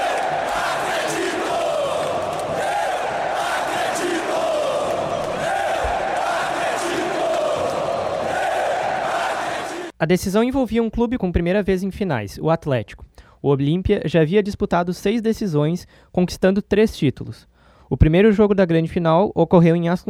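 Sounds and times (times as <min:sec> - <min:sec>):
football fans chanting support in large stadium: 0:00.0 - 0:10.0
speech: 0:10.0 - 0:20.0.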